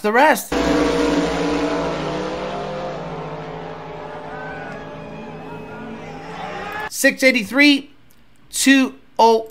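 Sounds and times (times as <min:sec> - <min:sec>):
speech: 0:00.0 - 0:01.2, 0:07.0 - 0:07.9, 0:08.5 - 0:09.4
drag race cars accelerating down the track on a qualifying pass: 0:00.5 - 0:06.9.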